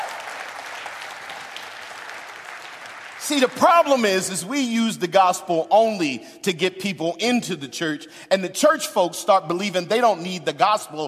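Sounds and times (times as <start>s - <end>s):
church crowd clapping: 0.0s - 4.0s
speech: 3.3s - 11.0s.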